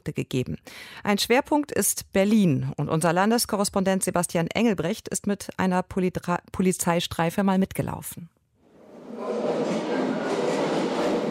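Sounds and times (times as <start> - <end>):
speech: 0.0 - 8.3
U-Bahn train rumbling into underground Osloer Strasse station in Berlin: 8.7 - 11.2
U-Bahn train cars rattling past: 9.1 - 11.2.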